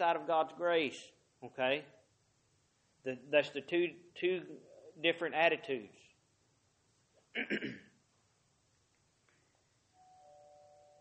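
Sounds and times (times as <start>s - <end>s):
speech: 0.0s - 2.0s, 3.0s - 6.0s, 7.4s - 7.9s
bell ringing: 10.0s - 10.9s.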